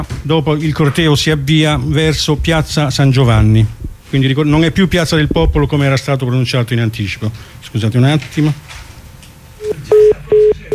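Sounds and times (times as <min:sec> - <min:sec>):
speech: 0:00.0 - 0:08.7
telephone keypad dialing tones: 0:09.6 - 0:10.7.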